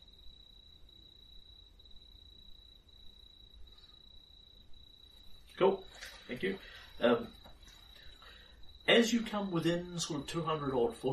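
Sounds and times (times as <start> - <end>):
cicada drone: 0.0 - 11.1
speech: 5.6 - 7.4, 8.9 - 11.1.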